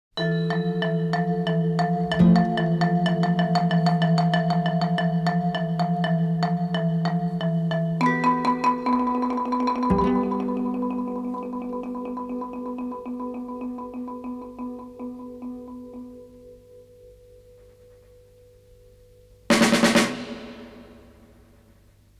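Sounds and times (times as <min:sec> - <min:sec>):
abstract asian music: 0:00.4 - 0:16.7.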